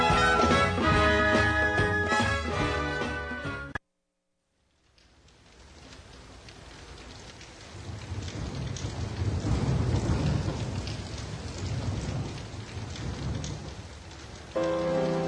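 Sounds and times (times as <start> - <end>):
steady dense rain hissing: 0.0 - 3.4, 4.6 - 15.2
deep rolling thunder: 5.5 - 15.2
tonal musical note: 14.6 - 15.2.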